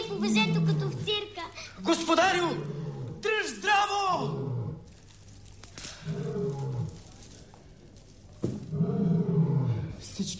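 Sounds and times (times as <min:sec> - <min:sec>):
speech: 0:00.1 - 0:04.5, 0:10.2 - 0:10.3
lion roaring: 0:00.2 - 0:01.1, 0:02.3 - 0:03.4, 0:04.1 - 0:04.9, 0:06.0 - 0:07.1, 0:08.7 - 0:10.0.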